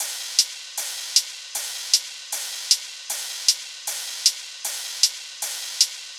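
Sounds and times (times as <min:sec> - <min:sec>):
deathstep EDM drum loop at 155 bpm: 0:00.0 - 0:06.1.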